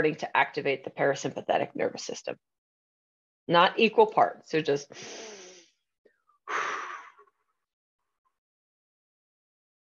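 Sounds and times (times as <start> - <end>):
speech: 0.0 - 2.6, 3.5 - 5.4
breathing in through the nose and out through the mouth: 4.9 - 7.3.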